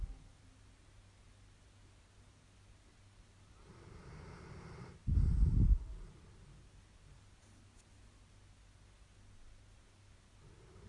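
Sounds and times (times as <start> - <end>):
dog snoring with a low rough rumbling snore: 3.6 - 6.3, 10.4 - 10.8
dog breathing: 3.7 - 6.5.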